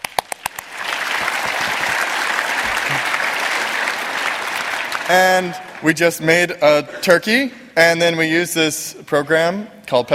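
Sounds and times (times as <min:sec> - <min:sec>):
audience applause: 0:00.0 - 0:06.2
speech: 0:05.1 - 0:10.1.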